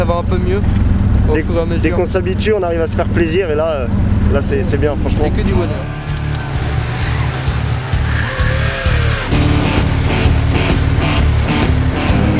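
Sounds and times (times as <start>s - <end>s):
snowmobile with a 1200 cc engine running: 0.0s - 12.3s
speech: 0.1s - 6.1s
rushing wind noise: 5.2s - 10.6s.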